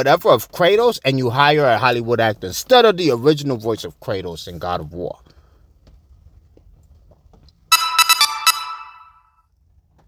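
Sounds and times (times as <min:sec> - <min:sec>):
speech: 0:00.0 - 0:05.3
phone message notification chime: 0:07.7 - 0:09.3.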